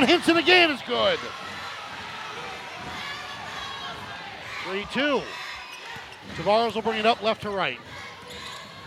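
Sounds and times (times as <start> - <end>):
speech: 0.0 - 1.5, 4.6 - 5.4, 6.2 - 8.0
raucous crowd cheering at a basketball game: 0.0 - 8.8.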